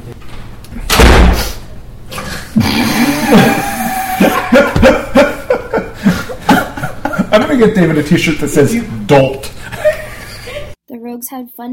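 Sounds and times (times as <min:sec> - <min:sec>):
door swinging shut with a loud thud: 0:00.9 - 0:01.4
several people chuckling and laughing: 0:03.2 - 0:07.8, 0:09.6 - 0:10.8
speech: 0:07.6 - 0:09.5, 0:11.2 - 0:11.7.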